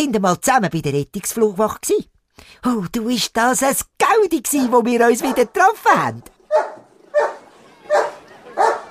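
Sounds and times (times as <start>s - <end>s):
speech: 0.0s - 6.8s
rescue dog barking: 6.5s - 8.8s.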